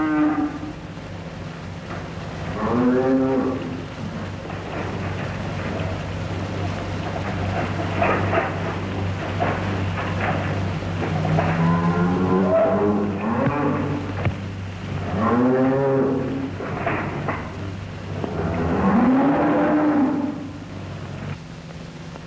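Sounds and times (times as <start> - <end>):
cattle in South West Africa mooing: 0.0 - 0.8, 2.6 - 3.8, 11.2 - 14.3, 15.0 - 16.5, 18.2 - 20.6
general outdoor noise: 0.0 - 22.2.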